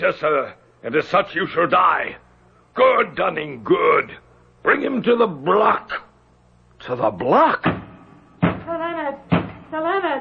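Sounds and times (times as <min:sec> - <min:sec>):
speech: 0:00.0 - 0:02.2, 0:02.8 - 0:06.0, 0:06.8 - 0:07.8
heavy knocking on a door: 0:07.6 - 0:08.7, 0:09.3 - 0:09.7.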